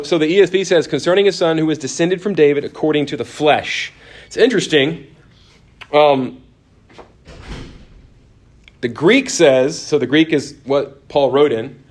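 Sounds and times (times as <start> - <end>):
speech: 0.0 - 5.2, 5.9 - 6.4, 8.8 - 11.8
door swinging shut with a brief tonal creak: 6.9 - 8.2.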